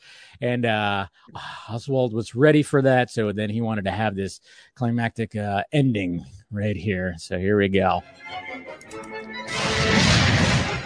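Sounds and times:
speech: 0.4 - 10.0
quiet musical passage: 8.0 - 10.8
loud explosion sound effect: 9.5 - 10.8.

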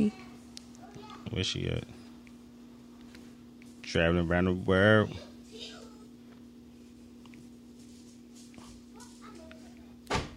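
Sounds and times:
steady low electrical hum: 0.0 - 10.3
speech: 1.3 - 2.0, 3.9 - 5.7
door slamming: 10.1 - 10.3.

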